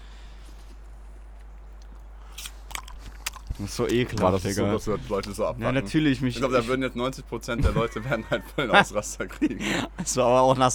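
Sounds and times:
low steady hum: 0.0s - 10.7s
person biting and chewing an apple: 0.5s - 4.3s
speech: 3.6s - 10.7s
laughter: 7.5s - 10.6s.

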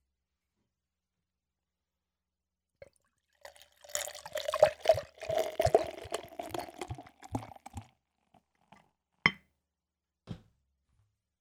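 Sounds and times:
Belgian beer glugging and splashing into a glass: 2.8s - 7.9s.

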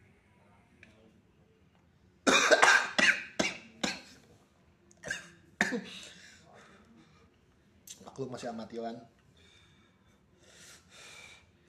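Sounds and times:
harsh rapid coughing: 2.3s - 4.2s, 5.0s - 6.2s
speech: 5.7s - 6.1s, 8.2s - 9.2s.

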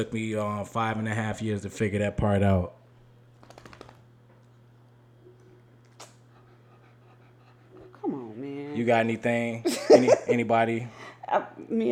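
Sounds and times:
speech: 0.0s - 2.8s, 8.8s - 11.9s
steady low electrical hum: 0.0s - 11.9s
dog panting: 6.0s - 9.4s
dog whimpering: 7.7s - 8.8s
laughter: 9.6s - 10.6s.

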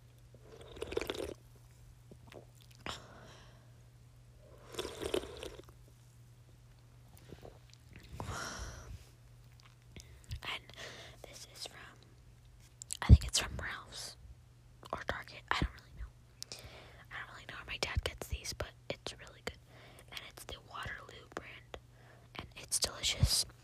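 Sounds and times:
steady low electrical hum: 0.0s - 23.6s
person gulping and swallowing sparkling water: 0.4s - 1.4s, 2.1s - 3.0s, 4.6s - 5.7s.

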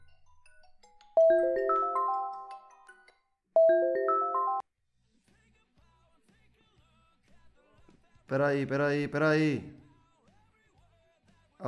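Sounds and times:
mobile phone ringtone signalling an incoming call: 1.2s - 3.0s, 3.6s - 4.7s
speech: 8.3s - 9.8s.

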